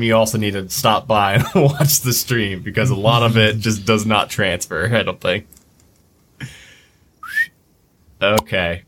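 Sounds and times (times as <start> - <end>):
speech: 0.0 - 5.6, 8.2 - 8.8
person whistling: 7.2 - 7.6.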